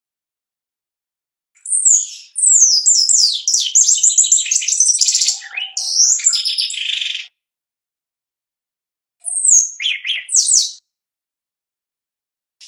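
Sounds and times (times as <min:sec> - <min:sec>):
Shiny cowbird gurgling twittering song: 0:01.6 - 0:07.3, 0:09.2 - 0:10.7.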